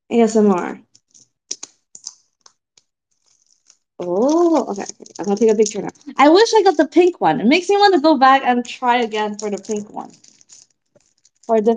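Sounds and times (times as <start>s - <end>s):
speech: 0.1s - 0.9s, 4.0s - 10.4s, 11.5s - 11.7s
wrapper rustling: 0.8s - 7.9s, 8.6s - 11.7s
package wrapper torn open: 1.0s - 6.8s, 8.9s - 11.7s.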